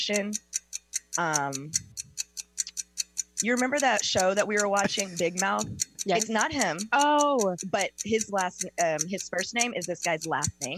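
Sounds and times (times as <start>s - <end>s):
speech: 0.0s - 0.5s, 1.2s - 1.9s, 3.4s - 10.7s
game timer ticking during a guessing game: 0.0s - 10.7s.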